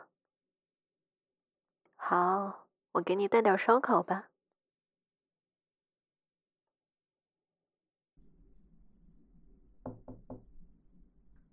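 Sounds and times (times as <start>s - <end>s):
speech: 2.1s - 4.3s
firm knocking on a door: 9.8s - 10.6s.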